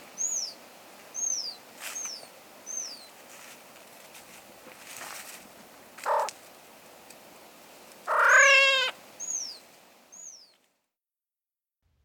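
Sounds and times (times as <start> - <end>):
ruffed grouse calls: 6.0 - 6.4, 8.1 - 9.0.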